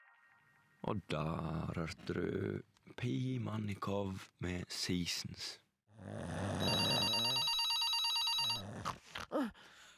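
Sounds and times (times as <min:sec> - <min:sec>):
speech: 0:00.8 - 0:06.4
telephone ringing with trilling electronic tone: 0:06.6 - 0:08.6.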